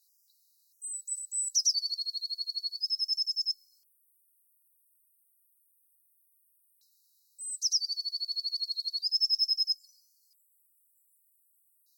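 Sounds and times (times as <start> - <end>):
blue tit singing an unusual song: 0.0 - 3.9, 7.4 - 11.8.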